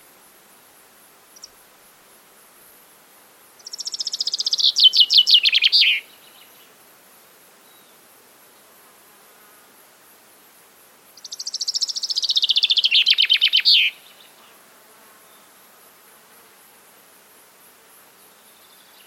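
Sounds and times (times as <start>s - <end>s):
common chaffinch singing descending trilled phrases: 3.6s - 6.6s, 11.2s - 14.4s.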